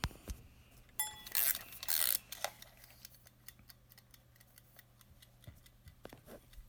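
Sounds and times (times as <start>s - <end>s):
wind-up kitchen timer being wound with ratcheting: 1.0s - 5.9s
wind-up kitchen timer ticking: 1.0s - 6.6s.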